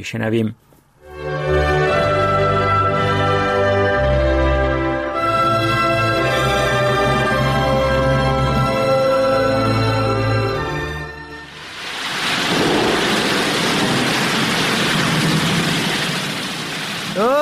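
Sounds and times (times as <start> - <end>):
speech: 0.0 - 0.7
music: 1.0 - 11.6
rushing flood water roaring: 5.9 - 17.4.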